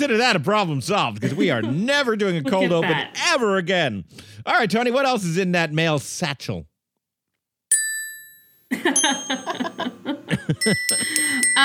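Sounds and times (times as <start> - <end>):
speech: 0.0 - 6.7, 8.7 - 11.6
laughter: 1.2 - 3.2, 8.8 - 11.6
bright metallic bell ding: 7.7 - 10.0, 10.6 - 11.6.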